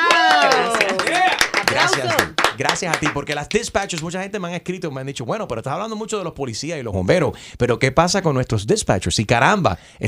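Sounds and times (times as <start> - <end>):
excited voices exclaiming: 0.0 - 2.3
studio applause: 0.0 - 4.3
speech: 2.8 - 10.0.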